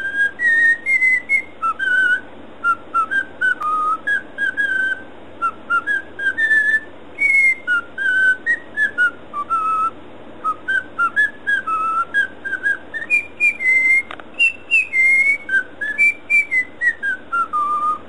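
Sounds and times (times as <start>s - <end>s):
cockatiel whistling a lively tune: 0.0s - 18.0s.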